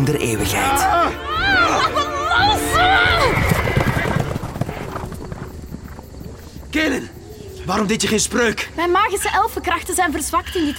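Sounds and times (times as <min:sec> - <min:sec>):
speech: 0:00.0 - 0:02.0, 0:06.8 - 0:07.1, 0:07.7 - 0:10.7
horses' hooves clip-clopping as riders approach: 0:03.1 - 0:06.7.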